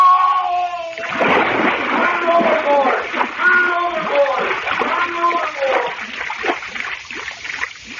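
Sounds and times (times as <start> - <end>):
person crying out: 0.0 - 1.0, 1.9 - 5.9
churning, thrashing water: 0.0 - 7.9
splash of a man falling overboard into water: 0.9 - 7.9.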